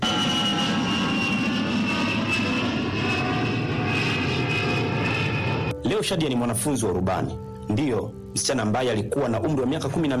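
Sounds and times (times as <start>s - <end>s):
airplane taking off: 0.0s - 5.8s
speech: 6.0s - 10.1s.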